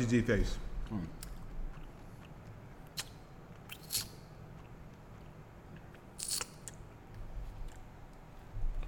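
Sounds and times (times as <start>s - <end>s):
low noise: 0.0s - 8.8s
person chewing crunchy honey cinnamon almonds: 0.8s - 7.9s.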